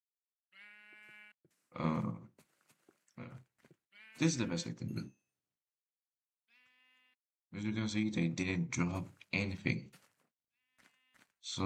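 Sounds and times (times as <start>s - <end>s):
video-game sheep bleating: 0.5s - 2.1s, 3.2s - 4.7s, 6.5s - 7.2s, 10.6s - 11.4s
speech: 4.2s - 5.2s, 7.5s - 10.0s, 11.4s - 11.6s.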